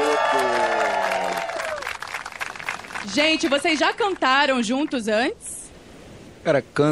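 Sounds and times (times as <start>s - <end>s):
live audience whooping and shouting: 0.0s - 2.1s
live audience clapping: 0.0s - 5.0s
speech: 3.1s - 5.4s, 6.4s - 6.8s.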